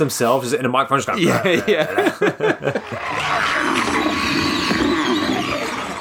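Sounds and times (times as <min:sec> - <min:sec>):
speech: 0:00.0 - 0:04.5
laughter: 0:01.1 - 0:03.4
person imitating a zombie growl: 0:02.7 - 0:05.9.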